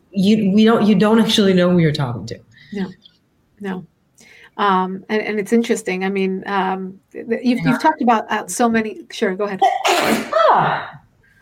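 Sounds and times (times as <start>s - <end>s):
speech: 0.2s - 11.0s
single loud sneeze: 9.6s - 11.0s.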